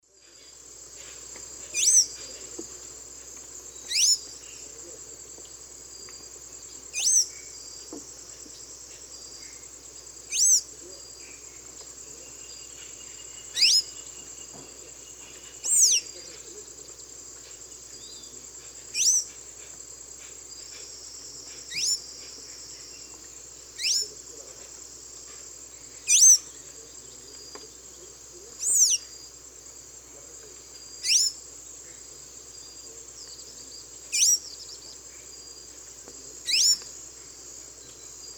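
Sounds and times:
Thraupis episcopus calls and song in the Eastern Lowlands of South America: 0:00.3 - 0:02.7, 0:03.7 - 0:04.9, 0:06.0 - 0:24.2, 0:25.2 - 0:29.2, 0:30.7 - 0:32.0, 0:32.6 - 0:35.5, 0:36.5 - 0:36.9.

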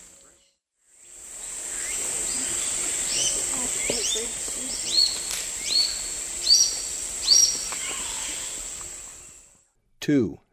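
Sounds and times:
orange-eyed flatbill giving high rising notes in South American eastern lowlands: 0:01.1 - 0:09.5.

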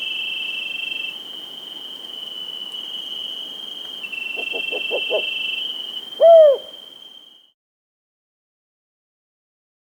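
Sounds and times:
high insect drone: 0:00.0 - 0:07.6
Rufous-banded owl hooting in South America: 0:04.1 - 0:06.9.

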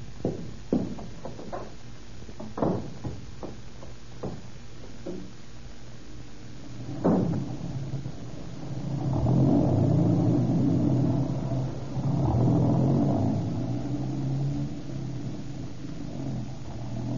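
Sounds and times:
car engine revving and droning while driving: 0:06.8 - 0:17.1.

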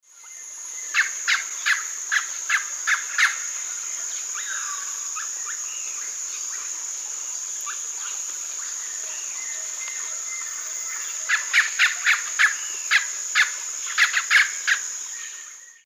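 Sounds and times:
Psarocolius angustifrons calls: 0:00.2 - 0:06.7, 0:07.6 - 0:15.8.

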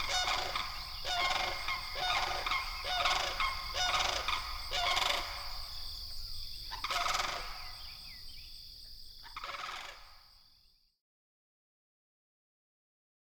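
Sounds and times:
sandhill crane rattling bugling calls: 0:00.0 - 0:05.5, 0:06.7 - 0:07.8.

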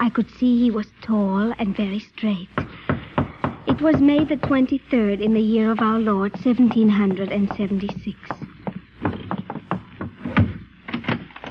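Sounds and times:
speech: 0:00.0 - 0:02.8, 0:03.8 - 0:08.4
knocking on the wooden door of a new house in Philadelphia: 0:02.6 - 0:04.7, 0:05.9 - 0:10.6.

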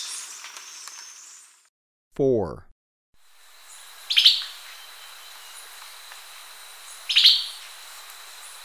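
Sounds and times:
speech: 0:02.2 - 0:02.7
continuous high-pitched hiss: 0:03.2 - 0:08.6
Tyrannine Woodcreeper buzzy call notes in Ecuador: 0:03.4 - 0:08.6.

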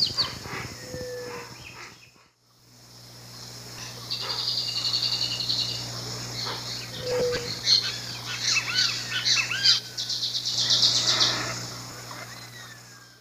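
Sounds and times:
pale-eyed blackbird Agelasticus xanthophthalmus song in the Eastern Lowlands of S America: 0:00.0 - 0:02.2, 0:03.8 - 0:13.1
background hum: 0:00.0 - 0:13.1.

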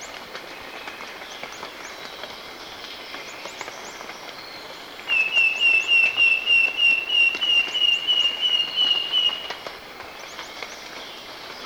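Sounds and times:
Wing-banded Wren sustained whistle in Ecuador: 0:05.1 - 0:09.5.

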